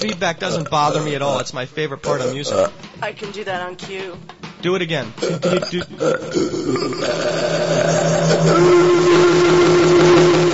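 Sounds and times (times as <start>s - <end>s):
long loud belch: 0.0s - 2.8s, 5.2s - 10.5s
speech: 0.0s - 8.9s.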